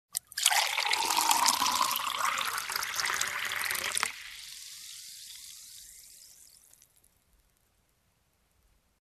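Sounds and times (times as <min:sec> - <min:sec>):
water pouring into a glass: 0:00.2 - 0:07.1.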